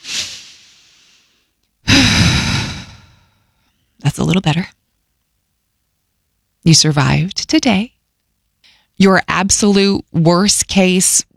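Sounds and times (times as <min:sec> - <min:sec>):
deep rushing inhale: 0:00.0 - 0:03.2
louder fuller exhale like a long sigh: 0:00.0 - 0:03.2
speech: 0:04.2 - 0:04.8, 0:06.6 - 0:08.0, 0:09.0 - 0:11.3.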